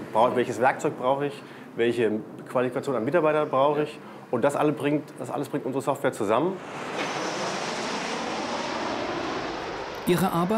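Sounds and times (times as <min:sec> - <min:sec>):
airplanes flying low overhead above workers: 0:00.0 - 0:10.5
speech: 0:00.2 - 0:07.1, 0:10.1 - 0:10.5.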